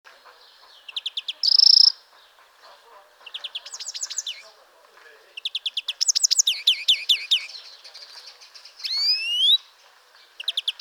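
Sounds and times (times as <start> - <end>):
European greenfinch Chloris chloris chirping trills: 0.5 - 2.0, 3.2 - 4.5, 5.4 - 9.6, 10.4 - 10.8.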